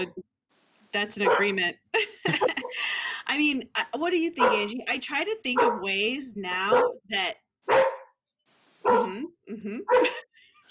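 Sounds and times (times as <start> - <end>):
speech: 0.0 - 0.3, 0.9 - 7.9, 9.5 - 10.3
dog barking in short bright yips: 1.2 - 1.6, 4.4 - 4.7, 5.6 - 5.9, 6.7 - 7.0, 7.7 - 8.2, 8.8 - 9.1, 9.9 - 10.2.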